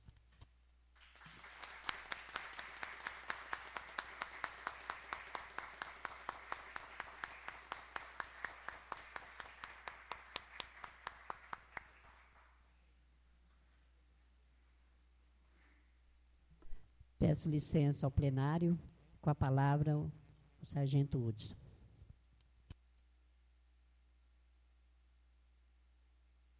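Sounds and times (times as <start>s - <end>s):
sharp steady claps: 1.0s - 12.6s
standing ovation applause in a legislative chamber: 1.0s - 12.7s
speech: 17.3s - 21.6s.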